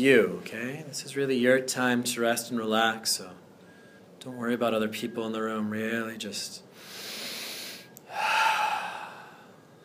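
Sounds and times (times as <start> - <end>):
speech: 0.0 - 3.4, 4.2 - 6.7
deep breathing in a meditation class: 6.7 - 9.7.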